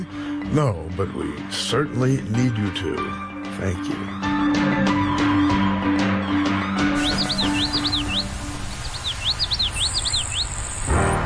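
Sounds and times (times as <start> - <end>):
speech: 0.0 - 5.0
soft music: 0.0 - 11.2
captive-raised Florida grasshopper sparrow singing: 6.2 - 10.9.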